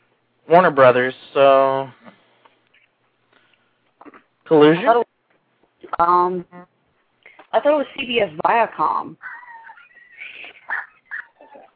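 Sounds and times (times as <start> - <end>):
speech: 0.5 - 2.2, 4.5 - 5.0, 5.9 - 6.7, 7.5 - 9.4
dogs whining and yelping: 9.2 - 11.7.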